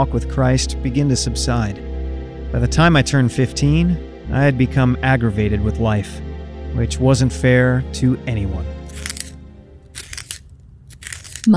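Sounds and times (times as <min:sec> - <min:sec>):
speech: 0:00.0 - 0:01.9, 0:02.5 - 0:09.1
pencil being sharpened: 0:08.9 - 0:11.5.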